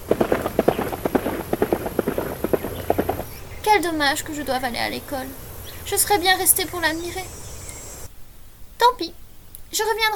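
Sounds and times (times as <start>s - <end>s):
Haflinger pony hooves galloping away: 0.0s - 8.0s
speech: 3.7s - 7.4s, 8.9s - 10.1s.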